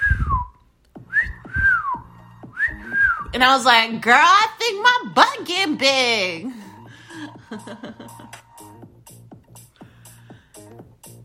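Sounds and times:
person whistling to mimic someone whistling from apartment balconies: 0.0s - 3.4s
speech: 3.4s - 6.5s.

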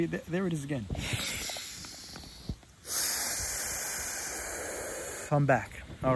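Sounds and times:
speech: 0.0s - 1.4s, 5.3s - 6.1s
deep breathing during a breathing exercise: 0.9s - 5.4s.

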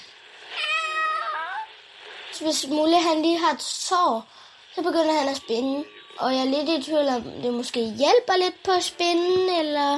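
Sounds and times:
child imitating a cat's meow: 0.5s - 1.8s
speech: 2.4s - 9.9s.

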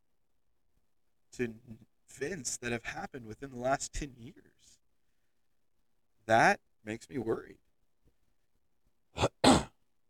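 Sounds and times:
speech: 1.4s - 4.8s, 6.3s - 7.6s
person coughing: 9.2s - 9.8s.

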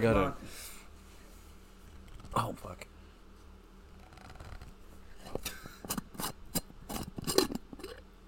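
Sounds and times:
speech: 0.0s - 0.7s, 2.3s - 2.9s
moonshine jar lid twisting open with metallic clicks and scraping: 5.8s - 8.0s.

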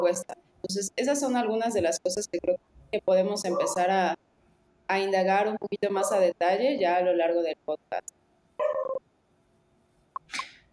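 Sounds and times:
speech: 0.0s - 4.3s, 4.9s - 9.0s, 10.3s - 10.5s
small dog with high yappy barks: 3.4s - 3.9s.

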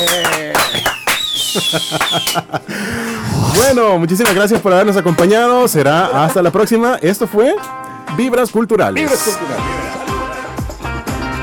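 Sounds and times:
high whistling tones sliding downward: 0.0s - 2.4s
firecrackers bursting: 0.0s - 2.5s, 3.3s - 4.6s
laughter: 1.6s - 3.2s
speech: 1.6s - 10.0s
voices: 2.9s - 4.0s.

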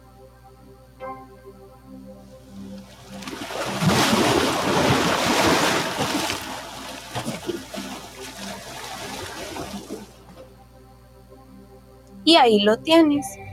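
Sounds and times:
faint low tonal hum: 0.0s - 13.5s
ocean waves surging and breaking: 3.0s - 10.3s
speech: 12.3s - 13.4s.

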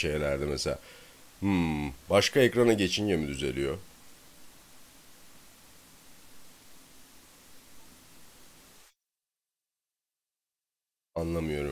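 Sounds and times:
speech: 0.0s - 3.9s, 11.2s - 11.6s
static hiss on the audio line: 0.0s - 8.9s, 11.2s - 11.6s.

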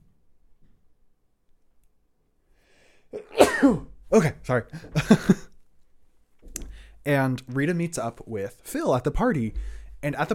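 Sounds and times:
person sneezing: 3.1s - 3.9s
speech: 3.6s - 5.5s, 7.0s - 10.3s.

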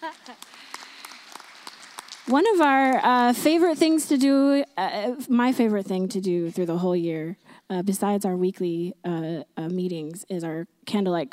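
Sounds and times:
speech: 0.0s - 0.6s, 2.3s - 11.3s
crowd applauding the tech team: 0.0s - 3.7s.

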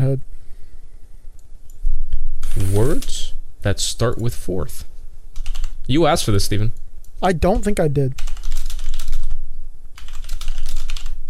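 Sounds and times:
speech: 0.0s - 0.3s, 2.6s - 4.9s, 5.9s - 8.2s
rapid typing on a computer keyboard: 5.4s - 5.7s, 8.2s - 9.4s, 10.0s - 11.2s.

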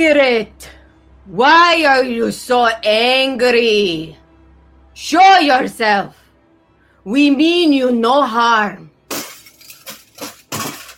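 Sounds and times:
speech: 0.0s - 4.2s, 5.0s - 6.2s, 7.0s - 8.9s
thrown cup smashing on a hard floor: 9.1s - 10.9s.

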